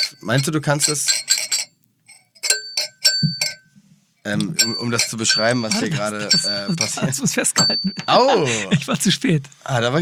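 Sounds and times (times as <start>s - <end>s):
glass clinking while being handled: 0.0s - 3.8s, 4.4s - 8.2s
speech: 0.2s - 1.3s, 4.2s - 10.0s.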